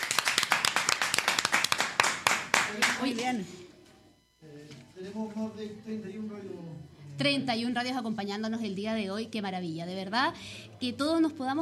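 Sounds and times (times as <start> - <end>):
crowd applause for radio stations at a live celebration: 0.0 - 3.1
sharp single claps: 0.0 - 3.4
speech: 2.7 - 3.8, 4.4 - 11.6.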